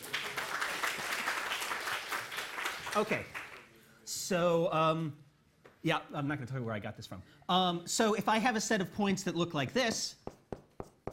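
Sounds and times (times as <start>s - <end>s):
audience applause: 0.0s - 3.7s
speech: 3.0s - 3.4s, 4.1s - 5.2s, 5.8s - 10.2s.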